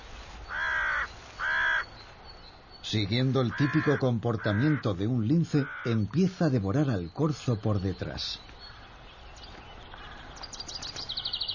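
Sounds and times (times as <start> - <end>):
faint noise: 0.0 - 11.5
crows cawing: 0.5 - 2.0, 3.4 - 6.0, 8.6 - 9.0, 9.9 - 10.4
speech: 2.9 - 8.5.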